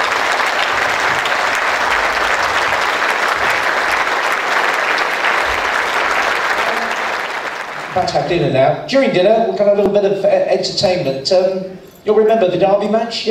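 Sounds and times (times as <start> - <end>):
audience applauding at an evening dinner event: 0.0 - 8.4
speech: 8.0 - 13.2.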